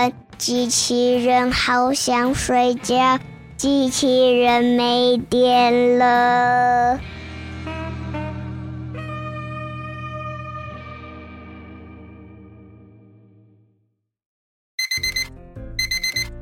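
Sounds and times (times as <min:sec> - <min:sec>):
speech: 0:00.0 - 0:07.1
alarm clock ringing in short bright bursts: 0:14.8 - 0:16.3
sustained electronic tone: 0:14.8 - 0:16.3.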